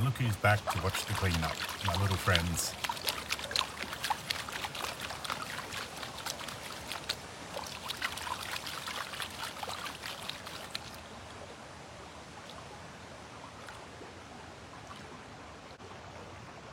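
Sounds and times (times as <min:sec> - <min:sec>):
speech: 0:00.2 - 0:03.2
water splashing over a metal sluice trap into a pan: 0:00.4 - 0:10.8.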